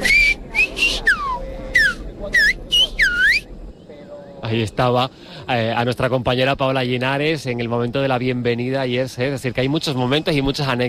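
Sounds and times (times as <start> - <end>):
person whistling a short lively melody as a welcome greeting: 0.0 - 3.4
speech: 4.5 - 10.8.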